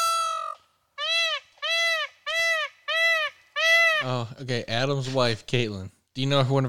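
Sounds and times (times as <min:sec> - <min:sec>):
peacock calling: 0:00.0 - 0:04.3
speech: 0:04.0 - 0:06.6.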